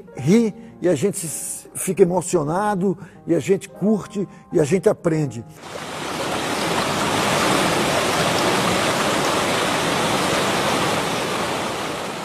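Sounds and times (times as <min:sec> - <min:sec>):
speech: 0:00.0 - 0:06.2
flowing spring water: 0:05.6 - 0:12.2.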